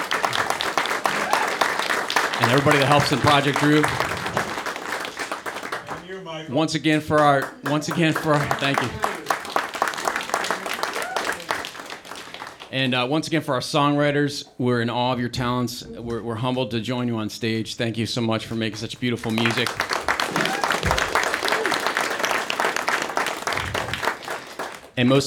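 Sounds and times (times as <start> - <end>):
crowd applauding: 0.0 - 6.4, 7.0 - 12.8, 18.5 - 25.2
speech: 2.4 - 4.1, 6.2 - 9.1, 12.7 - 19.9, 25.0 - 25.2.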